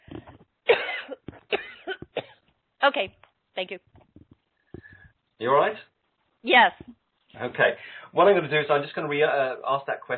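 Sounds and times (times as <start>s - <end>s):
person coughing: 0.1s - 2.4s
speech: 2.8s - 3.9s, 5.4s - 10.1s.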